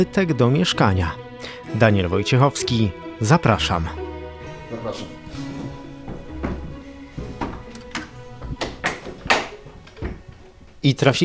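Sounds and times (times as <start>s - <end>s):
speech: 0.0s - 4.0s, 4.7s - 5.5s, 10.8s - 11.2s
horizontally split wooden door clunking and creaking: 5.8s - 10.8s
sharp knocks of door: 6.0s - 10.2s
door latch clicks: 7.4s - 10.2s.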